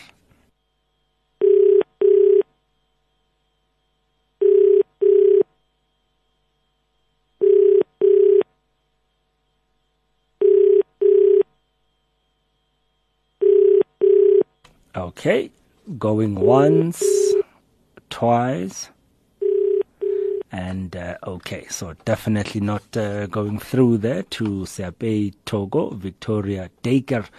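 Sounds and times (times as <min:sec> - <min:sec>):
telephone ringback tone in a double-pulse pattern: 0:01.4 - 0:02.5, 0:04.4 - 0:05.6, 0:07.4 - 0:08.5, 0:10.4 - 0:11.6, 0:13.4 - 0:14.6, 0:16.4 - 0:17.5, 0:19.4 - 0:20.5
speech: 0:15.0 - 0:17.2, 0:18.2 - 0:19.0, 0:20.5 - 0:27.3.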